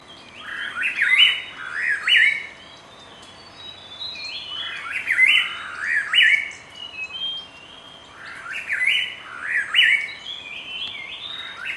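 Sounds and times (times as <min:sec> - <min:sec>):
chestnut-crowned laughingthrush calling: 0:00.4 - 0:02.6, 0:04.4 - 0:07.4, 0:08.1 - 0:11.7.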